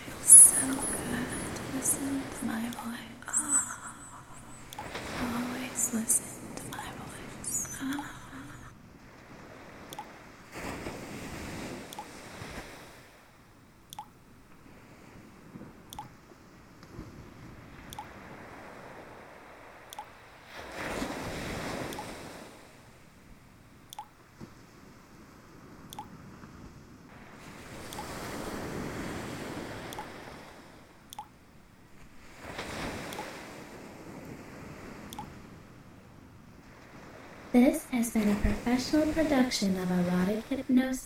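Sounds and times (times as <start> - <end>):
ocean waves breaking on shore: 0.0 - 23.3, 23.9 - 41.0
faint steady hiss: 0.0 - 41.0
soft ticks: 0.2 - 8.6, 9.9 - 10.2, 11.9 - 12.2, 13.9 - 14.6, 15.9 - 17.0, 17.8 - 18.2, 19.8 - 20.3, 21.8 - 22.2, 23.8 - 24.4, 25.9 - 26.2, 27.9 - 28.3, 29.8 - 30.3, 31.0 - 31.4, 33.0 - 33.4, 35.0 - 35.4
speech: 1.8 - 3.3, 37.6 - 41.0.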